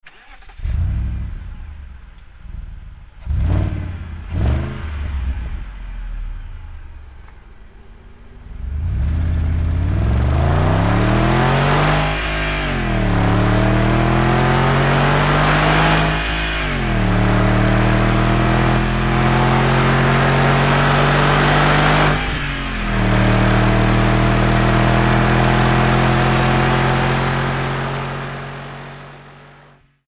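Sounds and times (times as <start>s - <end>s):
engine running: 0.0s - 29.9s.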